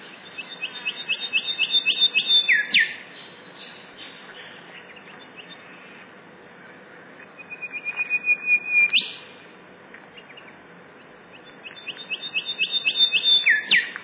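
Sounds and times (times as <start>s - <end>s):
golden whistler singing whistled notes ending in a sharp whip: 0.2s - 3.0s, 7.4s - 9.2s, 11.3s - 14.0s.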